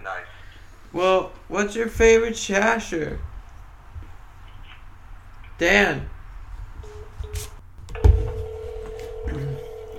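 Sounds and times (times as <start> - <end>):
speech: 0.9 - 3.3, 5.6 - 6.2
steady telephone line tone: 6.8 - 9.9.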